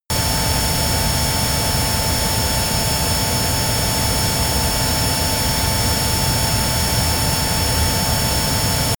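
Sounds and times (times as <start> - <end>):
military jet Flanker-C turbine at full power: 0.1 - 8.9.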